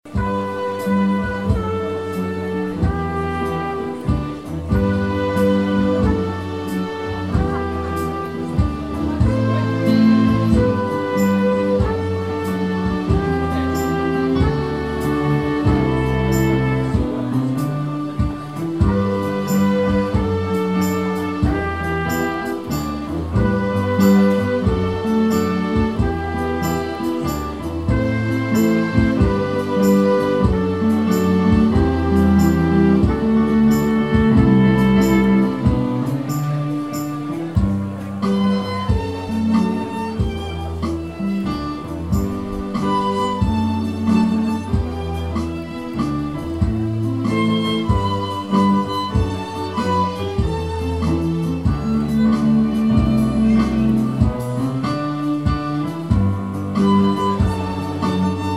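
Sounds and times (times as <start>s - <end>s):
piano: 0.0s - 58.5s
strings: 0.0s - 58.5s.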